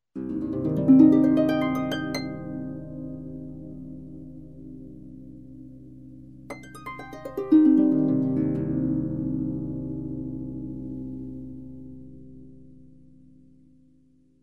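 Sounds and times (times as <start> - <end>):
harp minor arpeggio up and down: 0.2 - 4.1, 6.5 - 9.8.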